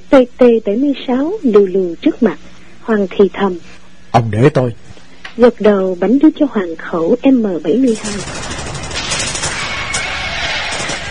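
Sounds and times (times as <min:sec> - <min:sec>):
speech: 0:00.1 - 0:08.4
dense continuous gunfire from machine guns and AK rifles: 0:07.9 - 0:11.0.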